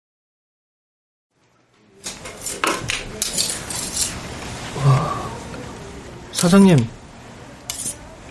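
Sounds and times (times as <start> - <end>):
metal knives clinking and scraping together: 2.4 - 4.2, 7.7 - 8.0
speech: 6.4 - 7.0.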